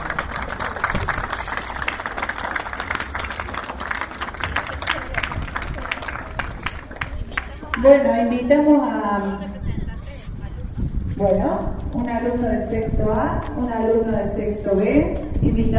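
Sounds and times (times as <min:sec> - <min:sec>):
audience applause: 0:00.0 - 0:07.8
crowd murmur: 0:00.0 - 0:11.1
speech: 0:07.8 - 0:09.8, 0:11.2 - 0:15.7.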